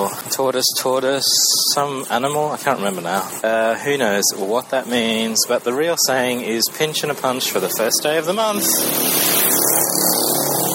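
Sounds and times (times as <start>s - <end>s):
speech: 0.0s - 9.4s
motorbike engines passing outside: 5.2s - 10.7s.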